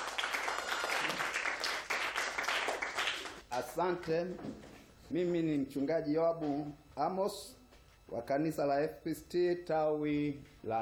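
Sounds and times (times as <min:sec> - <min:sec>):
church congregation applauding a pastor: 0:00.0 - 0:03.5
speech: 0:03.5 - 0:10.7.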